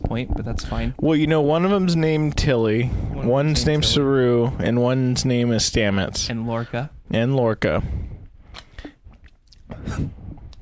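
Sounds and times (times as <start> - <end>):
speech: 0.1 - 8.0, 10.0 - 10.2
wet mouth clicks: 8.5 - 10.6.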